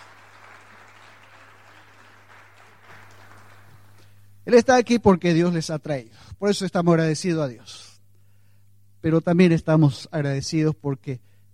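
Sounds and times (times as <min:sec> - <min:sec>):
crowd applauding: 0:00.0 - 0:04.0
low electrical hum: 0:00.0 - 0:11.5
speech: 0:04.5 - 0:07.9, 0:09.0 - 0:11.3.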